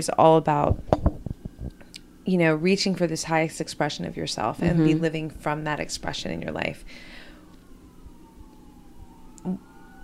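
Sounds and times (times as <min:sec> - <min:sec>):
speech: 0:00.0 - 0:01.0, 0:02.3 - 0:07.2, 0:09.4 - 0:09.7
low traffic rumble: 0:00.0 - 0:10.0
emergency vehicle siren wailing: 0:04.6 - 0:10.0.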